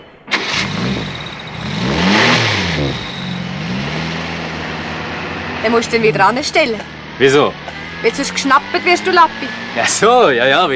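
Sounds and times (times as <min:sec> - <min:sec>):
car engine revving as it drives off: 0:00.3 - 0:10.7
speech: 0:05.6 - 0:10.7.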